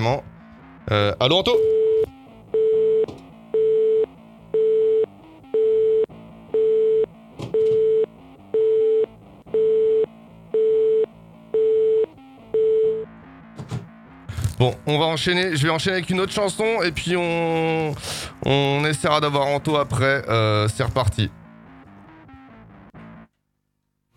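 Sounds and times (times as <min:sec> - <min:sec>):
speech: 0:00.0 - 0:00.3, 0:00.9 - 0:01.8, 0:14.9 - 0:21.4
telephone busy signal beeps from a failed call attempt: 0:01.6 - 0:13.1.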